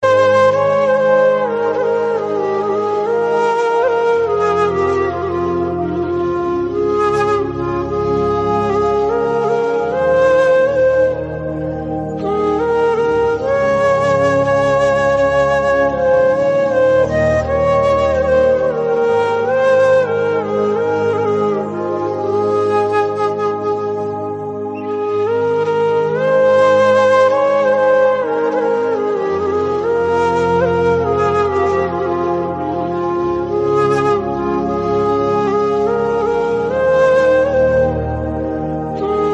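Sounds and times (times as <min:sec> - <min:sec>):
instrumental flute ringtone: 0:00.0 - 0:39.3.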